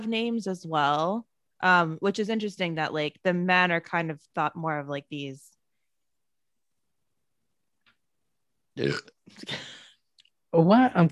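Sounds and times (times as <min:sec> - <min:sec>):
speech: 0:00.0 - 0:05.6, 0:08.8 - 0:09.8, 0:10.5 - 0:11.1
loud throaty burp: 0:08.8 - 0:09.3.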